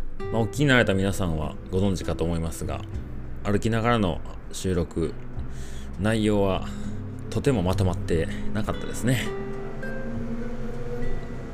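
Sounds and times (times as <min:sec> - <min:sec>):
speech: 0:00.2 - 0:09.4
motorcycle engines droning: 0:03.1 - 0:11.5.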